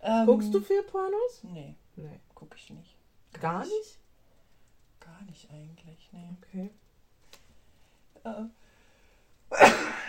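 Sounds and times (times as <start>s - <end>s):
speech: 0.0s - 4.0s, 5.0s - 6.8s, 8.2s - 8.6s, 9.5s - 10.0s
sneeze: 9.5s - 10.0s.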